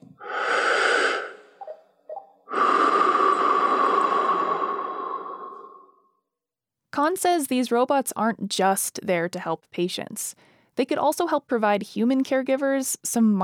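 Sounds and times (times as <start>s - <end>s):
slow deep breathing during a seated yoga exercise: 0.0s - 1.7s, 2.4s - 6.2s
speech: 7.1s - 13.4s.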